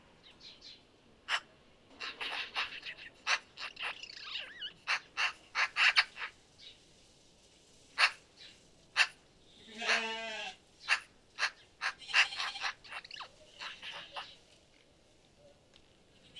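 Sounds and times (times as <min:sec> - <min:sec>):
Eurasian magpie Pica pica uttering harsh rasping chatter notes: 0:01.3 - 0:06.3, 0:08.0 - 0:08.2, 0:10.8 - 0:14.3.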